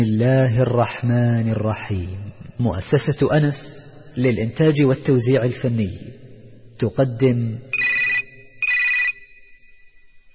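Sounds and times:
speech: 0:00.0 - 0:06.1, 0:06.8 - 0:07.7
telephone ringing in high-pitched electronic bursts: 0:07.8 - 0:09.8.

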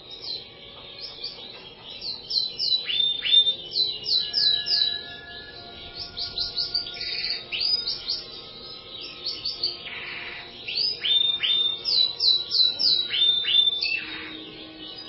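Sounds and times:
bird song with rapid high chirps and sharp slurred notes: 0:00.0 - 0:15.0.

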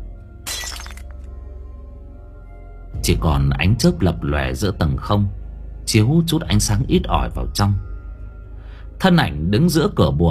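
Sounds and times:
oil lamp falling to the floor and shattering: 0:00.4 - 0:01.3
speech: 0:03.0 - 0:07.9, 0:09.0 - 0:10.2.

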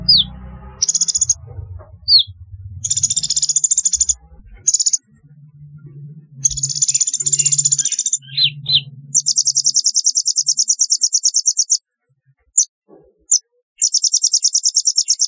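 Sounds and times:
sunbird high buzzy trilled phrases and swept chip notes: 0:00.0 - 0:01.4, 0:02.1 - 0:05.1, 0:06.4 - 0:11.8, 0:13.8 - 0:15.2
intermittent low rumbling background noise: 0:00.0 - 0:09.6.

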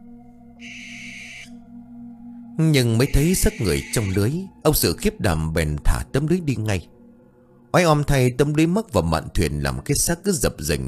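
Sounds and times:
owl screeching near a river at night: 0:00.6 - 0:01.6, 0:02.9 - 0:04.4
speech: 0:02.6 - 0:07.0, 0:07.7 - 0:10.8.

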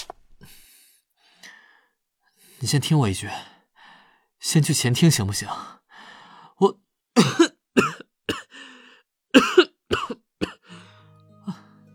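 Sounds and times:
speech: 0:02.6 - 0:03.5, 0:04.4 - 0:05.8, 0:06.6 - 0:06.8
man leaning on a table coughing hoarsely: 0:07.2 - 0:08.5, 0:09.4 - 0:10.8.

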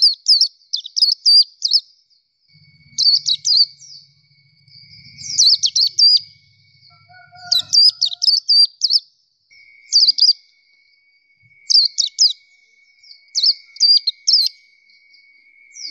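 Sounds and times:
nightingale song training recording: 0:00.0 - 0:15.8
faint steady tone: 0:01.9 - 0:08.2, 0:09.0 - 0:15.8
low rumble: 0:02.5 - 0:07.1.

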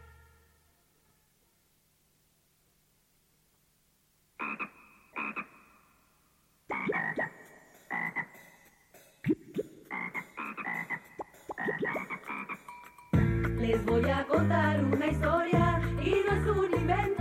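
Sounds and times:
frog croaking: 0:04.4 - 0:08.6, 0:09.3 - 0:12.9
speech: 0:13.6 - 0:17.2.

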